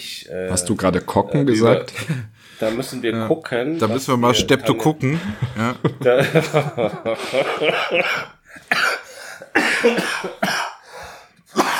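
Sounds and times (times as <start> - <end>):
speech: 0.0 - 8.7, 9.8 - 10.6
laughter: 1.8 - 2.4, 4.4 - 10.5
person coughing harshly: 7.9 - 10.8, 11.5 - 11.7.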